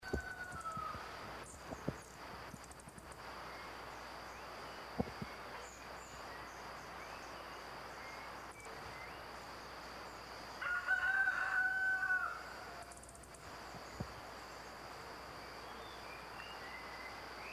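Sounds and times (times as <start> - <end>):
chestnut-bellied hummingbird: 0.0 - 17.5.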